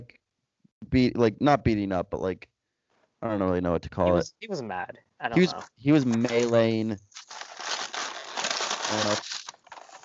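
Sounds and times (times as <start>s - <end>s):
speech: 0.9s - 2.5s, 3.2s - 7.4s, 8.9s - 9.4s
paper bag crinkling: 5.4s - 10.0s.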